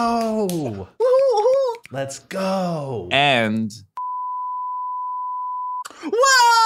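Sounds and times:
speech: 0.0 - 1.0, 1.9 - 3.9, 6.0 - 6.6
censor beep over speech: 4.0 - 5.8.

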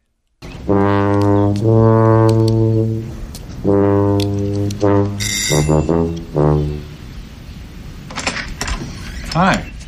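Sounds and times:
tuba playing behind a door: 0.5 - 7.2
speech: 0.7 - 2.0, 9.4 - 9.6.

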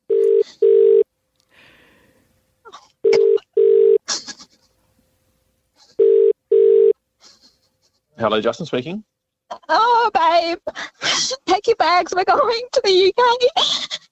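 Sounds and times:
phone line ringing out with double-ring tones: 0.1 - 1.0, 3.0 - 4.0, 6.0 - 7.0
speech: 8.2 - 9.1, 9.7 - 14.0.

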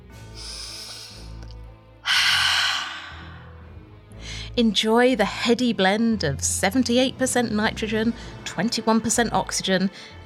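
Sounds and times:
person taking a slow deep breath: 0.3 - 4.6
speech: 4.6 - 10.2.

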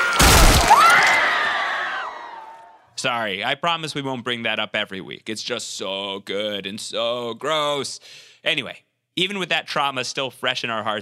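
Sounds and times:
loud crunching crack of a skull being crushed: 0.0 - 1.8
high drawn-out scream: 0.0 - 2.8
speech: 3.0 - 11.0.

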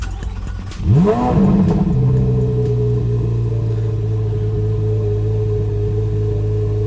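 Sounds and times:
2023 Corvette Z06 sports car engine starting and idling: 0.0 - 6.8.

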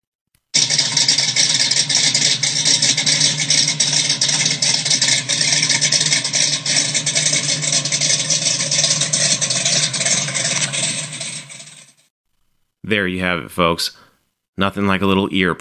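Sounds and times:
426 Hemi V8 engine idling with a rumble: 0.6 - 12.0
speech: 12.9 - 14.0, 14.6 - 15.6.

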